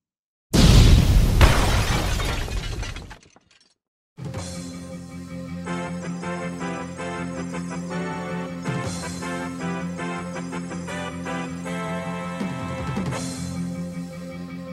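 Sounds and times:
big loud explosion rumbling and crackling: 0.6s - 2.7s
steady music: 4.5s - 14.7s.

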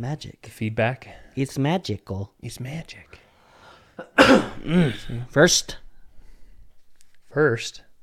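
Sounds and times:
speech: 0.0s - 3.2s, 4.0s - 5.8s, 7.3s - 7.9s
person coughing: 4.0s - 5.3s.

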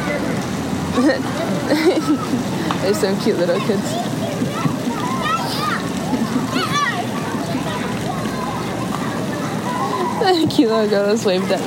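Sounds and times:
water splashing and spraying from a water gun: 0.0s - 11.6s
laughter: 0.9s - 2.7s, 4.1s - 7.7s
speech: 1.0s - 4.1s, 10.3s - 11.6s
children squealing and shouting outdoors: 1.6s - 2.6s, 3.4s - 10.5s.

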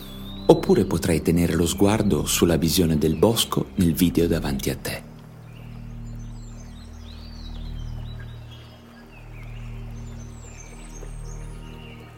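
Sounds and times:
nearby stream rushing in a forest: 0.0s - 12.1s
scattered high birdsong chirps and twitters in a forest: 0.0s - 12.1s
speech: 0.5s - 5.1s.

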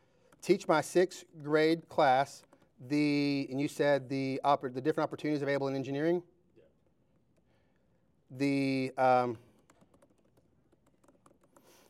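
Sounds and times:
speech: 0.4s - 6.3s, 8.3s - 9.4s
typing on a computer keyboard: 2.3s - 2.8s, 9.3s - 11.8s.

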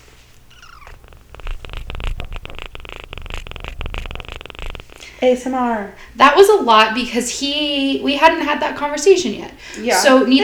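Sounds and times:
cat purring: 0.0s - 9.1s
speech: 5.2s - 10.4s.

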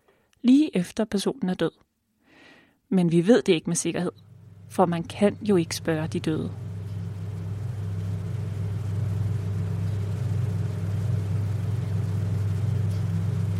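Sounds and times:
speech: 0.4s - 1.9s, 2.9s - 6.7s
large mortuary refrigerator humming: 4.1s - 13.5s.

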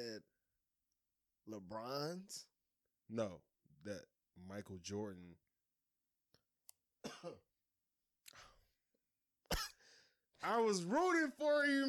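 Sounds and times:
speech: 0.0s - 0.3s, 1.5s - 2.5s, 3.1s - 5.4s, 7.2s - 7.5s, 10.4s - 11.8s
harsh coughs: 7.0s - 7.5s, 9.5s - 9.8s.

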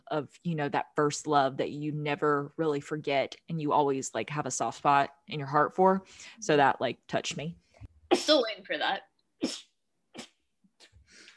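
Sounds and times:
speech: 0.1s - 10.3s
person sneezing: 9.4s - 10.4s.

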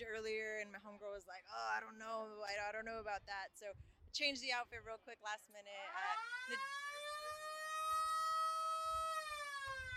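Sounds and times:
speech: 0.0s - 6.9s
lowrider siren wailing: 5.8s - 9.9s.

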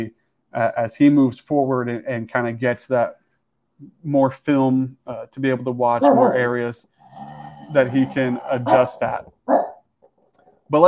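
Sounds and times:
speech: 0.0s - 3.2s, 3.8s - 9.7s
dog barking: 6.0s - 6.4s, 8.6s - 9.8s.

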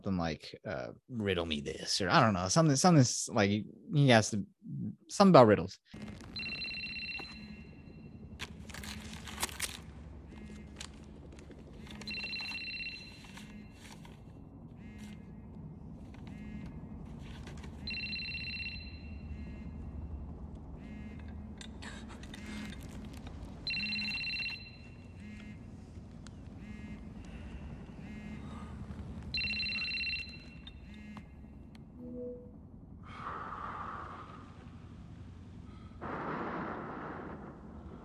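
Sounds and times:
speech: 0.0s - 6.5s
low rumbling background: 6.0s - 38.0s
telephone ringing with a bright warbling tone: 6.4s - 8.1s, 11.9s - 13.8s, 17.8s - 19.6s, 23.6s - 25.4s, 29.3s - 31.2s.

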